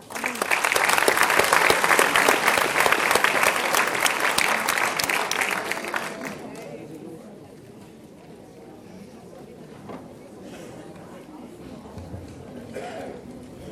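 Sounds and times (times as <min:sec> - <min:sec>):
large audience applauding as middle school students take their places: 0:00.0 - 0:06.8.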